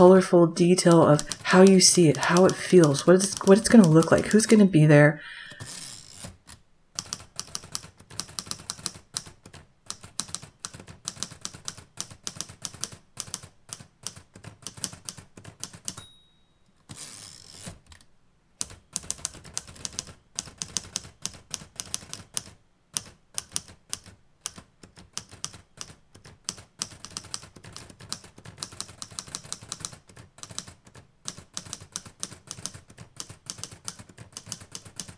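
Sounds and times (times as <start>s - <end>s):
keyboard typing: 0.0s - 4.8s, 5.4s - 16.0s, 16.8s - 35.1s
speech: 0.0s - 5.8s.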